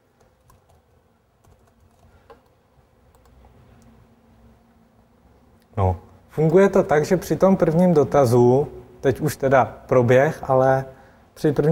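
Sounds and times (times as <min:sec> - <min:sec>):
low steady hum: 0:00.0 - 0:11.7
soft irregular typing on a computer keyboard: 0:00.2 - 0:04.0
speech: 0:05.8 - 0:11.7.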